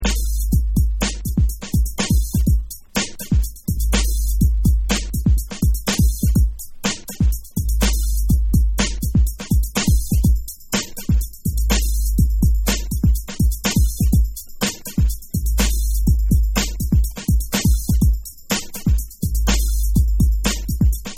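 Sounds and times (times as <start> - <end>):
drums: 0.0 - 21.1.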